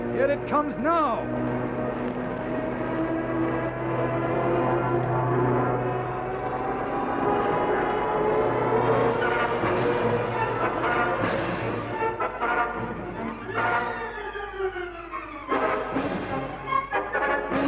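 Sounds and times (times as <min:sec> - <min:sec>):
busy rumbling background: 0:00.0 - 0:13.5
speech: 0:00.2 - 0:02.2
propeller plane engine roaring as it dives low over grass: 0:01.2 - 0:17.5.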